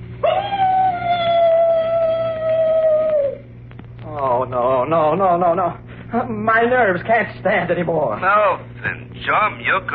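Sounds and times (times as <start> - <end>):
faint low hum: 0.0 - 9.9
long mournful dog howl: 0.2 - 3.5
speech: 4.9 - 9.9.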